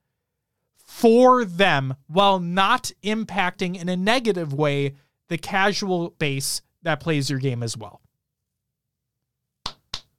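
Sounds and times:
speech: 1.0s - 8.0s
sharp hand claps: 9.6s - 10.1s.

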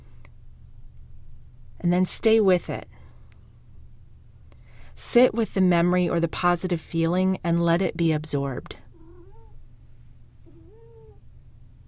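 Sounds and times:
low hum: 0.0s - 11.8s
speech: 1.8s - 3.0s, 5.0s - 8.8s
pet cat meowing: 8.9s - 9.6s, 10.4s - 11.2s.

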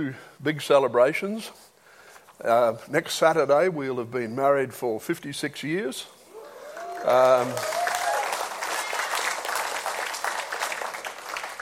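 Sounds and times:
speech: 0.0s - 1.7s, 2.4s - 6.2s, 7.0s - 7.8s
crowd whooping: 6.3s - 9.6s
audience applause: 6.4s - 11.6s.

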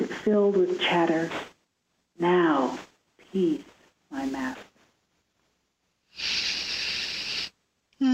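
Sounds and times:
speech: 0.2s - 1.5s, 2.2s - 4.7s
slow deep breath drawn in: 6.2s - 7.5s.

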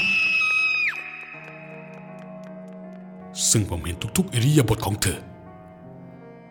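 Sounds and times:
nurse's loud piercing scream as she runs out of a room: 0.0s - 1.2s
speech: 3.5s - 5.3s.

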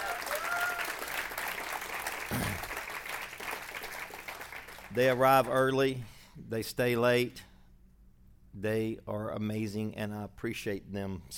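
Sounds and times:
faint cheers and whoops: 0.0s - 1.2s
congregation applauding: 0.0s - 5.2s
speech: 4.9s - 7.5s, 8.6s - 11.3s.

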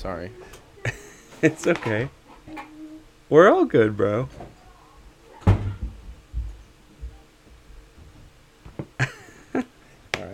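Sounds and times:
speech: 0.0s - 2.2s, 3.3s - 4.6s
door thudding shut: 5.4s - 6.0s.

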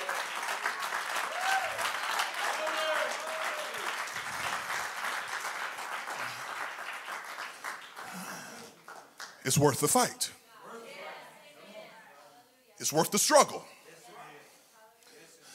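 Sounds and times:
audience clapping hands in worship: 0.0s - 10.1s
speech: 9.5s - 10.4s, 12.8s - 13.8s.

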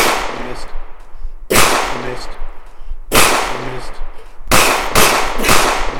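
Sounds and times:
video game gun gunshots: 0.0s - 0.9s, 1.5s - 2.5s, 3.1s - 5.9s.

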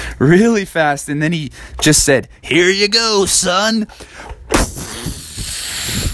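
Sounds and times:
speech: 0.2s - 4.7s
voice imitating a blue whale's blowhole blast: 4.6s - 6.1s.

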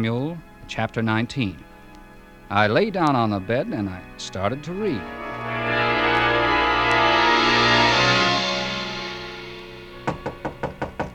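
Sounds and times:
speech: 0.0s - 1.7s, 2.5s - 5.8s
sustained droning musical tone: 0.0s - 11.1s
quick knocks on a hotel room door: 10.1s - 11.1s.

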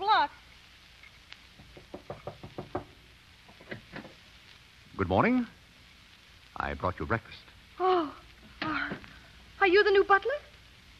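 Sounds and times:
knocking on a door in a house: 1.6s - 4.2s
speech: 5.1s - 5.6s, 6.6s - 7.5s, 9.7s - 10.5s.

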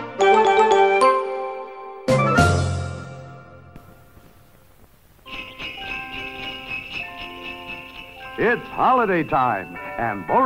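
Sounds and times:
chiming doorbell playing bright bell-like tones: 0.2s - 1.9s, 5.3s - 10.4s
speech: 9.0s - 10.4s.

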